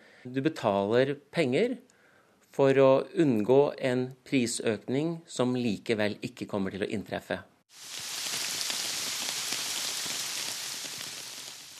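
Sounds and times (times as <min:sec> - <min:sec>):
speech: 0:00.2 - 0:01.9, 0:02.5 - 0:08.0
steady rain pattering onto a hard surface: 0:07.7 - 0:11.7.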